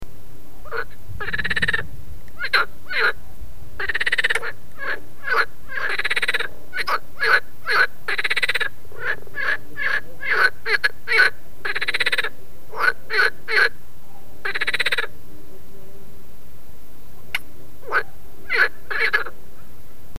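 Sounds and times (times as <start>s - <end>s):
Pelophylax ridibundus calling: 0.6s - 3.2s, 3.8s - 13.8s, 14.4s - 15.2s, 17.2s - 19.4s.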